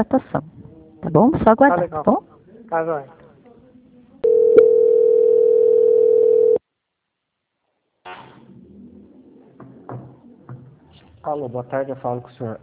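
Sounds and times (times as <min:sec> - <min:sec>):
speech: 0:00.0 - 0:03.2, 0:11.2 - 0:12.6
telephone line tone during call transfer: 0:04.2 - 0:06.6.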